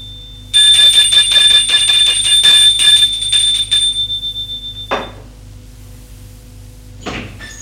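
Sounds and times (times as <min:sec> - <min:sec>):
electric doorbell ringing in a rapid metallic trill: 0:00.6 - 0:04.6.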